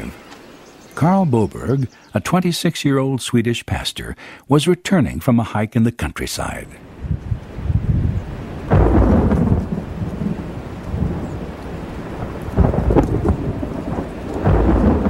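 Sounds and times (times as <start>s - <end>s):
speech: 1.0s - 7.3s
steady rainfall: 6.8s - 15.0s
rolling thunder from a summer afternoon thunderstorm in the countryside: 7.0s - 15.0s.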